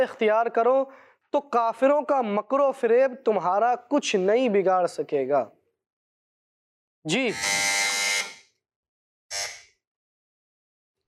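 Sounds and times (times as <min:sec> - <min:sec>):
speech: 0:00.0 - 0:05.6, 0:07.0 - 0:07.6
quiz contestant's electronic buzzer: 0:07.1 - 0:08.6, 0:09.3 - 0:09.8.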